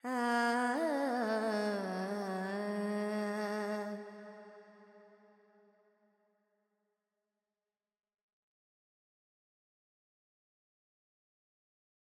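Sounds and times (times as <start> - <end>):
Carnatic female vocal alap in Phrygian mode: 0.0 - 4.4.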